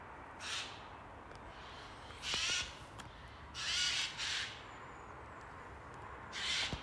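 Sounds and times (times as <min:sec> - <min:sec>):
Eurasian jay Garrulus glandarius harsh screeching calls: 0:00.4 - 0:00.8, 0:01.6 - 0:02.8, 0:03.6 - 0:04.6, 0:06.3 - 0:06.8.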